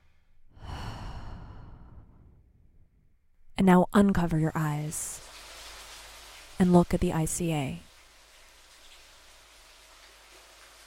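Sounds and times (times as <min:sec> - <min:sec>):
deep breath during a guided relaxation exercise: 0:00.0 - 0:03.0
speech: 0:03.6 - 0:05.3, 0:06.6 - 0:07.9.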